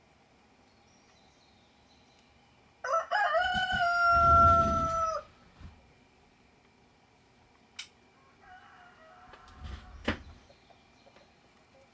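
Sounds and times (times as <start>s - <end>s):
rooster crowing: 2.8s - 5.4s, 8.1s - 10.1s.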